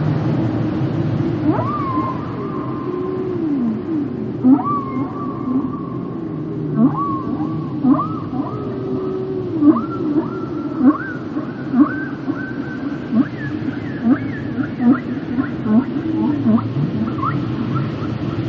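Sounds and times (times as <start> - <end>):
constant low rumble: 0.0 - 18.4
whale short tonal calls: 1.3 - 18.4.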